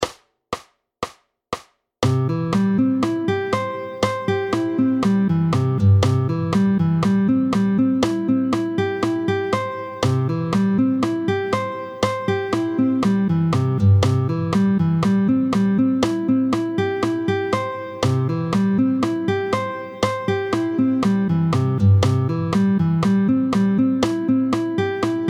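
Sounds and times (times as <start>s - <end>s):
C major arpeggio played with a pick: 2.0s - 25.2s.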